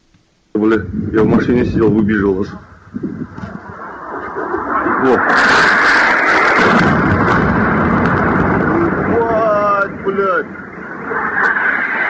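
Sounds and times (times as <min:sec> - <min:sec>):
speech: 0:00.6 - 0:03.5, 0:05.0 - 0:05.8
heavy explosions booming: 0:00.6 - 0:12.0
loud rumble: 0:00.6 - 0:12.0.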